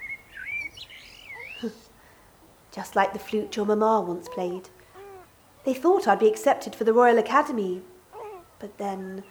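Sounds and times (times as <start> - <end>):
blackbird singing: 0.0 - 2.0, 4.3 - 5.8, 8.2 - 8.6
speech: 1.6 - 1.9, 2.8 - 4.8, 5.6 - 7.9, 8.6 - 9.2.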